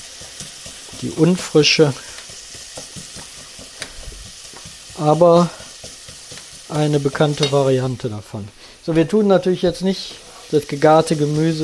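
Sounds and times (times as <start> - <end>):
soft stirring scrapes in a pan: 0.0 - 7.7
onions sizzling as they fry in a pan for a quick sauce: 0.0 - 11.6
speech: 1.0 - 2.1, 5.0 - 5.6, 6.8 - 11.6.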